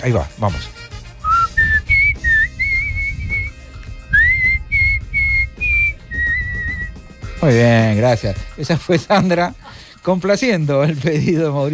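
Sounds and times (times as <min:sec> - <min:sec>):
speech: 0:00.0 - 0:00.9, 0:07.4 - 0:11.7
person whistling a short melodic tune: 0:01.2 - 0:07.1.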